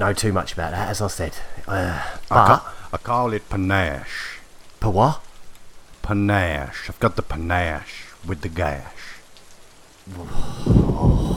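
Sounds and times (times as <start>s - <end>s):
speech: 0.0s - 5.3s, 6.0s - 9.1s, 10.1s - 11.3s
steady wash of rain: 0.0s - 11.3s
loud crack of thunder on a wet night: 10.3s - 11.3s.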